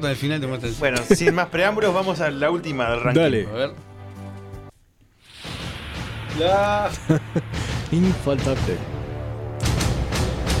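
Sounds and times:
speech: 0.0s - 3.9s, 6.4s - 8.9s
low sustained synth drone: 5.3s - 10.5s
laughter: 6.7s - 8.2s.

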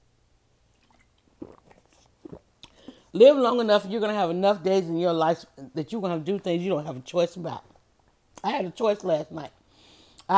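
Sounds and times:
person sipping a drink: 0.7s - 3.1s
soft wet mouth clicks and swallows: 0.7s - 3.1s
speech: 3.1s - 7.7s, 8.4s - 9.6s.

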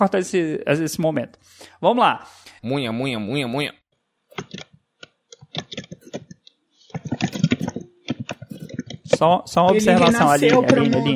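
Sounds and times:
speech: 0.0s - 3.8s, 5.5s - 5.8s, 9.1s - 11.1s
keys clattering on a computer keyboard: 4.3s - 9.3s.

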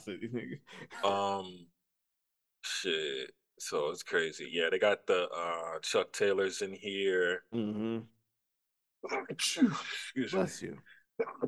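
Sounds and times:
speech: 0.0s - 1.8s, 2.8s - 8.2s, 9.0s - 11.4s
person sneezing: 9.0s - 10.1s.

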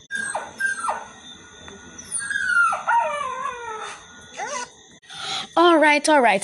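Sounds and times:
dog yelping and squealing: 0.0s - 1.2s, 2.0s - 4.8s
dog howling and whining: 0.0s - 4.8s
speech: 5.6s - 6.4s.

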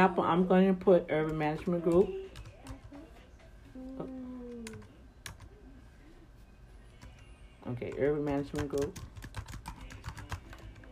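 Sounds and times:
speech: 0.0s - 2.2s, 7.7s - 9.1s
typing on a computer keyboard: 1.2s - 3.0s, 4.5s - 5.5s, 7.9s - 10.9s.

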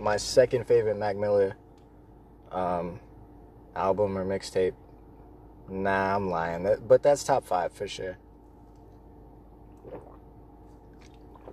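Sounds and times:
speech: 0.0s - 1.6s, 2.5s - 3.1s, 3.8s - 4.8s, 5.7s - 8.2s
low steady hum: 0.0s - 11.5s
person drinking water with soft wet gulps: 9.7s - 11.5s.

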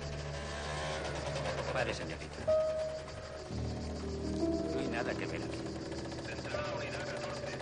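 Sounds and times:
motorcycle engine idling: 0.0s - 7.5s
speech: 1.7s - 2.8s, 5.0s - 5.7s
indistinct voices: 1.7s - 7.5s.

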